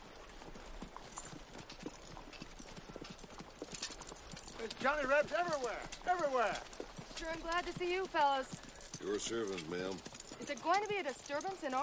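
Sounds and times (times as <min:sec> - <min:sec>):
pony hooves clip-clopping: 0:00.0 - 0:11.8
speech: 0:04.6 - 0:11.8.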